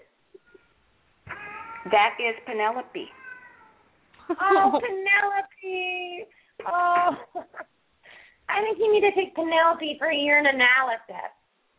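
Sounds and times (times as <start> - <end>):
cat meowing: 1.3 - 2.2, 3.0 - 4.0
speech: 1.8 - 3.2, 4.3 - 7.7, 8.6 - 11.4
laughter: 4.3 - 5.0, 7.0 - 7.7.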